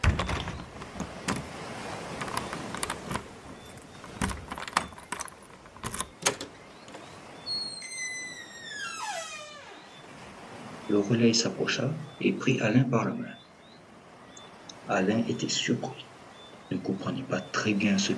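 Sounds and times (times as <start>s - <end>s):
house door hinges creaking: 0.0s - 1.5s, 2.2s - 10.0s
lock clicking: 2.2s - 7.0s
keys rattling: 2.3s - 7.0s
speech: 10.9s - 13.4s, 14.9s - 16.1s, 16.8s - 18.1s.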